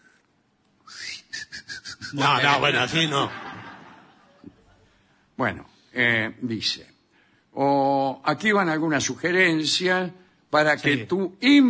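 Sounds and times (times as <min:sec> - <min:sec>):
person whistling a thin high-pitched tone: 0:00.9 - 0:02.2
speech: 0:02.1 - 0:03.4, 0:05.4 - 0:06.9, 0:07.6 - 0:11.6
laughter: 0:02.4 - 0:05.0.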